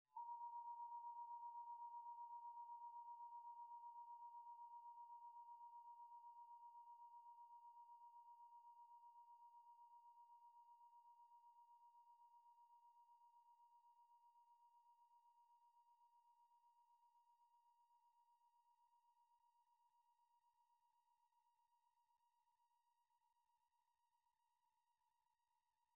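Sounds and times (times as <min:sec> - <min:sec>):
singing bowl: 0:00.1 - 0:19.6.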